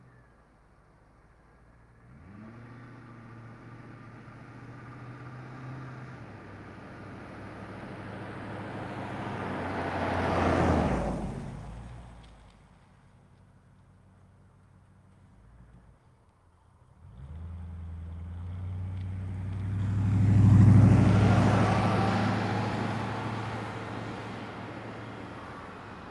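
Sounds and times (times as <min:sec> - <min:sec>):
Ford LTD car passing by: 0:02.0 - 0:12.4, 0:17.0 - 0:26.0
Ford LTD car stopping and reversing: 0:02.0 - 0:26.0.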